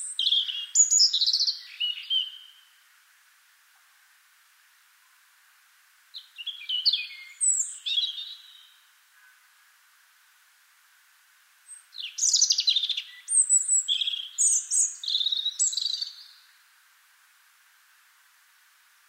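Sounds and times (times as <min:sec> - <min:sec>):
European robin Erithacus rubecula singing: 0:00.0 - 0:02.8, 0:06.1 - 0:09.5, 0:11.7 - 0:16.6.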